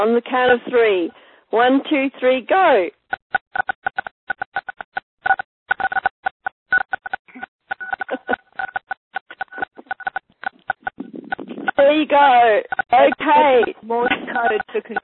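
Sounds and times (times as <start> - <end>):
speech: 0.0 - 3.0, 12.0 - 15.0
many phone keypad tones pressed at once: 3.1 - 11.9, 12.6 - 15.0.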